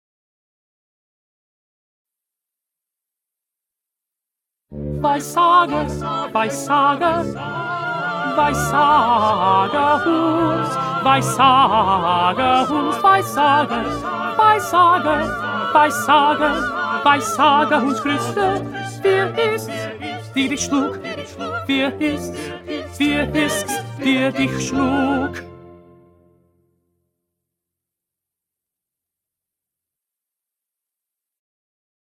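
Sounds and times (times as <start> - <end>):
first tenor singing: 5.0 - 25.5.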